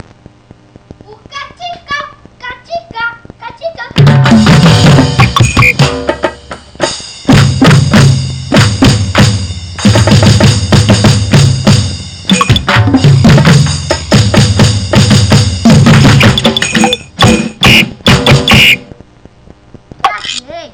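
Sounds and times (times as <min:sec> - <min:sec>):
drum kit: 0:03.2 - 0:19.1.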